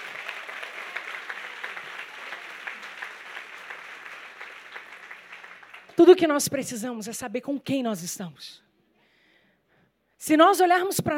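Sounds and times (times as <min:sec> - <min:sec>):
audience applauding: 0:00.0 - 0:06.2
speech: 0:06.0 - 0:08.6, 0:10.2 - 0:11.1.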